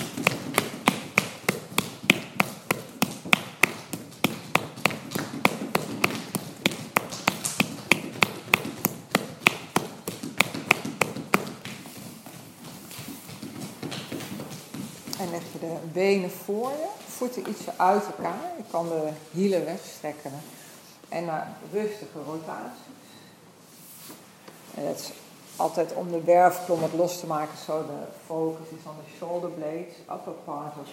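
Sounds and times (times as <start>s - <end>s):
firm slapping taps on the sole of a foot: 0.0s - 15.6s
speech: 15.6s - 23.0s, 24.8s - 30.9s.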